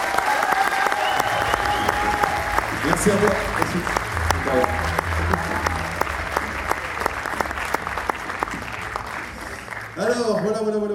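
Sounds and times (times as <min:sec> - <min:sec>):
large audience applause: 0:00.0 - 0:10.9
faint crowd noise: 0:01.0 - 0:10.9
speech: 0:03.0 - 0:05.4, 0:10.0 - 0:10.9.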